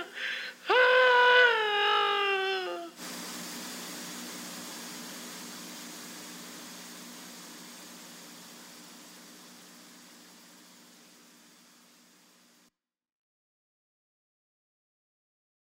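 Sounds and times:
broadband tape hiss from tape reels: 0:00.2 - 0:12.7.

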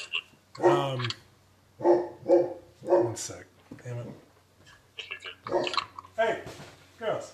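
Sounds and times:
dogs barking: 0:00.6 - 0:01.0, 0:01.8 - 0:03.3, 0:05.4 - 0:05.9
speech: 0:00.6 - 0:01.2, 0:03.2 - 0:04.3.

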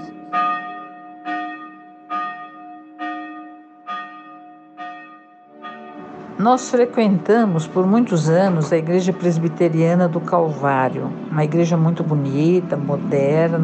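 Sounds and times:
bell ringing: 0:00.0 - 0:07.1
speech: 0:06.4 - 0:13.6.

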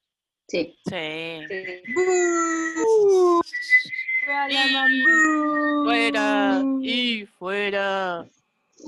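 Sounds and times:
speech: 0:00.5 - 0:03.7, 0:04.3 - 0:08.8
jeering whistles of disapproval: 0:01.5 - 0:06.5.

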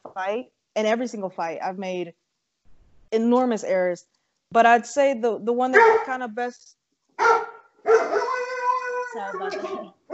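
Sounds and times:
speech: 0:00.2 - 0:02.2, 0:03.1 - 0:08.0, 0:09.2 - 0:10.0
dog barking and whining: 0:05.8 - 0:06.1, 0:07.2 - 0:10.1.

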